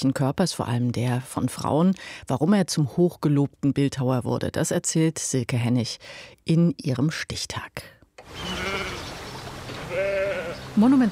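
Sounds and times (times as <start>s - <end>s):
speech: 0.0s - 8.8s, 10.8s - 11.0s
sheep bleating in grazed meadows of a southern English country estate: 8.4s - 9.0s, 9.8s - 10.7s.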